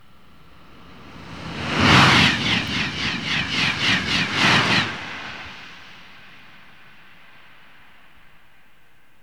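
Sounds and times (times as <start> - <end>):
TGV high-speed train passing close: 0.4 - 6.6.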